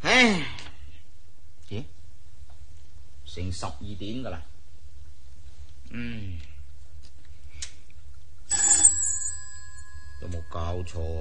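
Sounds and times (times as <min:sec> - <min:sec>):
speech: 0:03.4 - 0:04.6, 0:05.9 - 0:06.5, 0:10.2 - 0:11.1
telephone ringing in a pawnshop: 0:08.5 - 0:11.1.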